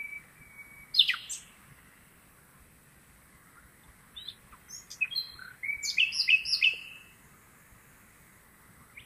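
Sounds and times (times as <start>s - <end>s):
common nightingale singing: 0.0s - 1.6s, 4.1s - 7.2s.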